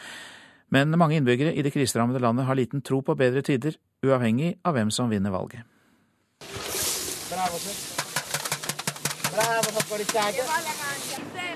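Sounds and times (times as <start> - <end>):
speech: 0.7 - 5.7, 7.4 - 7.9, 9.3 - 11.5
kitchen noise from a huge pot of soup being prepared outdoors: 6.4 - 11.2
sharp knocks and clatters from cooking a large pot of soup: 7.4 - 10.4.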